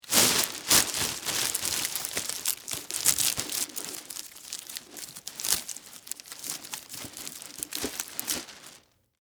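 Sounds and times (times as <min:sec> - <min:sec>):
household garbage bag tie: 0:00.0 - 0:08.9.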